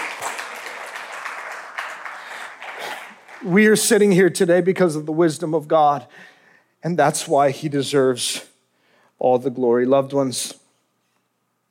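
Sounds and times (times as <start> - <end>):
crowd applauding: 0.0 - 4.1
speech: 2.8 - 8.5, 9.2 - 10.6.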